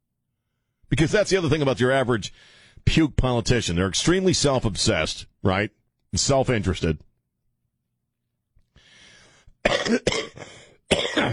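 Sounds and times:
speech: 0:00.9 - 0:07.1, 0:09.6 - 0:11.3
harsh explosive coughs: 0:09.6 - 0:11.3.

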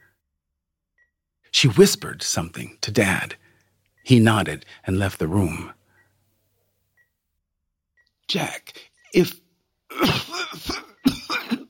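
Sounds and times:
speech: 0:01.5 - 0:03.4, 0:04.0 - 0:05.8, 0:08.3 - 0:10.8
harsh raspy coughing: 0:09.9 - 0:11.6.

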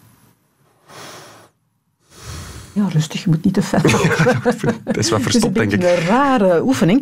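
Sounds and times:
forceful breaths drawn in through the nose during a breathing exercise: 0:00.8 - 0:02.8
speech: 0:02.8 - 0:07.0
laughter: 0:03.7 - 0:06.3.

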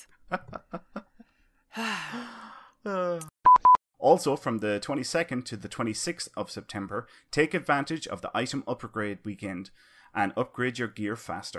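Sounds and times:
speech: 0:00.3 - 0:00.6, 0:04.1 - 0:11.5
sharp intense gasp with a breathy rasp: 0:01.7 - 0:02.8.

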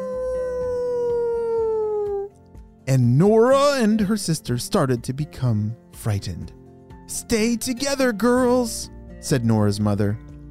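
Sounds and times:
animal howling above ground: 0:00.0 - 0:02.3
speech: 0:02.9 - 0:10.3.

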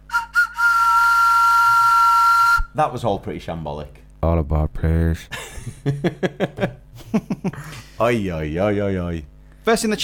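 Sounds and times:
whistle blown loudly: 0:00.0 - 0:02.7
speech: 0:02.8 - 0:10.0
laughter: 0:05.3 - 0:08.0.

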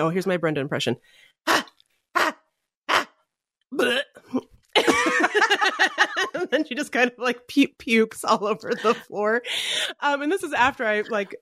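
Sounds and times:
speech: 0:00.0 - 0:01.7, 0:03.7 - 0:04.5, 0:05.8 - 0:11.3
person imitating dog barks: 0:01.5 - 0:03.2
laughter: 0:04.8 - 0:07.0, 0:08.6 - 0:09.2.

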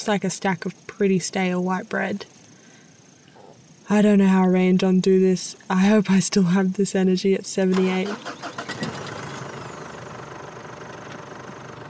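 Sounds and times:
speech: 0:00.0 - 0:02.4, 0:03.9 - 0:08.6
car engine idling: 0:08.0 - 0:11.8.

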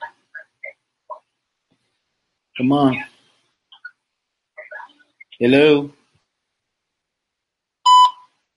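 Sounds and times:
speech: 0:02.6 - 0:03.1, 0:05.4 - 0:06.0
voicemail beep: 0:07.9 - 0:08.3.

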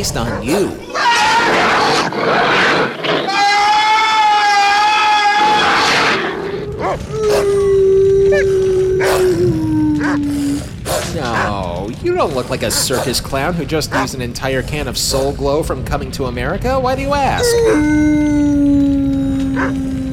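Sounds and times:
demonic devil dog howling in a 1970s TV movie: 0:00.0 - 0:02.3, 0:03.2 - 0:13.0, 0:17.4 - 0:20.1
speech: 0:00.0 - 0:03.3, 0:11.2 - 0:18.9, 0:19.6 - 0:19.9
rumbling background of growls: 0:00.0 - 0:15.4, 0:17.4 - 0:20.1.

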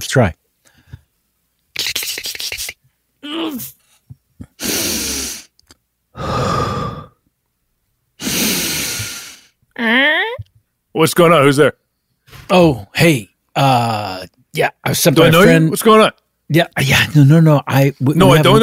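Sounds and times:
speech: 0:00.1 - 0:00.4, 0:11.0 - 0:11.8, 0:12.5 - 0:18.6
heavy deep breathing close to a door: 0:04.4 - 0:05.5, 0:06.1 - 0:07.2, 0:08.2 - 0:09.6.

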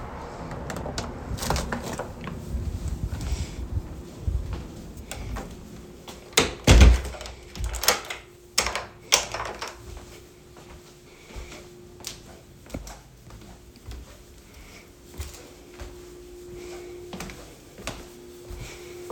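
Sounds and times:
front door of a house opening and closing: 0:00.3 - 0:02.4, 0:06.3 - 0:09.8
scuffing footsteps: 0:01.4 - 0:06.3, 0:09.8 - 0:19.0.

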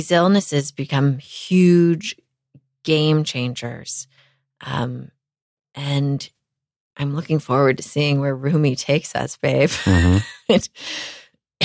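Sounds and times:
speech: 0:00.0 - 0:02.2, 0:02.8 - 0:05.2, 0:05.8 - 0:06.4, 0:07.0 - 0:11.2
laughter: 0:09.7 - 0:10.7
person coughing: 0:09.9 - 0:10.2.

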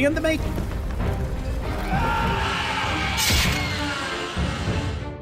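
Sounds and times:
speech: 0:00.0 - 0:01.1
loud dense crowd roaring: 0:01.7 - 0:05.1.

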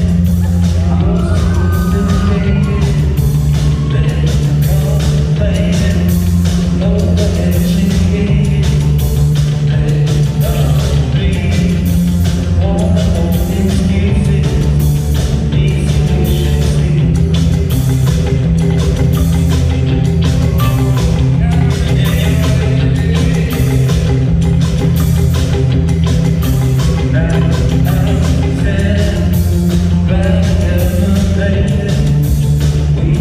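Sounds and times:
live rock music with drums, bass and guitars: 0:00.0 - 0:33.1
crowd whooping and shouting: 0:00.1 - 0:05.0, 0:20.0 - 0:22.9.

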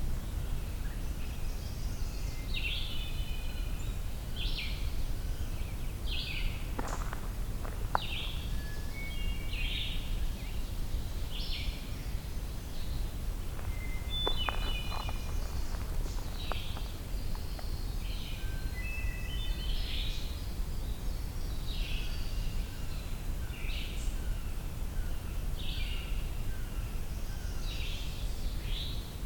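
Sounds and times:
ovenbird singing: 0:00.2 - 0:29.0
steady low outdoor rumble: 0:03.8 - 0:19.6.

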